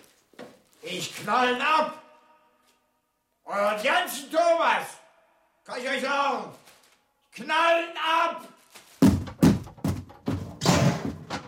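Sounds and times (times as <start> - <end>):
speech: 0.9 - 2.0, 3.5 - 5.0, 5.6 - 6.6, 7.4 - 8.5
apartment door being broken down by a police special unit: 9.0 - 11.4.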